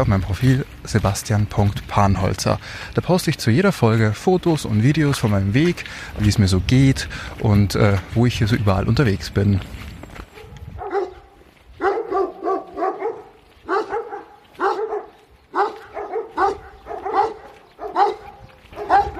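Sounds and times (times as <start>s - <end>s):
speech: 0.0s - 9.9s
dogs barking: 10.3s - 19.1s.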